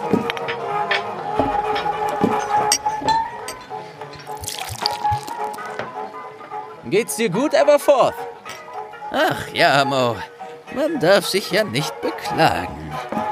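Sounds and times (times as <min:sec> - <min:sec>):
glassware clinking: 0:00.1 - 0:05.9
beer pouring from a tap into a glass: 0:04.3 - 0:05.8
speech: 0:06.9 - 0:08.3, 0:09.1 - 0:12.8
laughter: 0:09.1 - 0:13.2.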